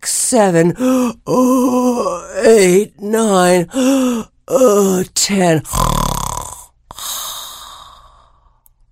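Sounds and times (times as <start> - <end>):
speech: 0.3 - 5.9
voice imitating a giant's big drawn-out yawn: 0.8 - 2.5, 5.7 - 8.4.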